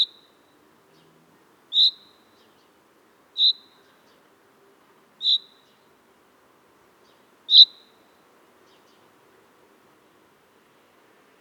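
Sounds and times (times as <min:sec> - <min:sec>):
common chaffinch Fringilla coelebs calls: 0:01.7 - 0:02.2, 0:03.4 - 0:03.8, 0:05.2 - 0:05.7, 0:07.5 - 0:07.8.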